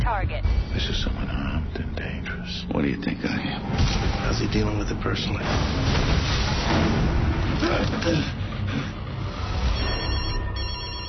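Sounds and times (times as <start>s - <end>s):
speech: 0.1s - 1.8s, 2.5s - 8.9s
telephone ringing with a warbling electronic trill: 9.7s - 11.0s.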